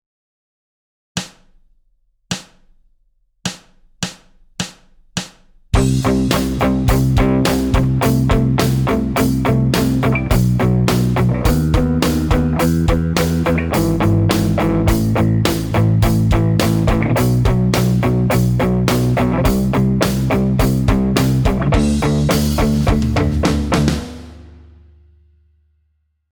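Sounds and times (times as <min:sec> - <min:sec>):
rock backing track: 0:05.7 - 0:24.6.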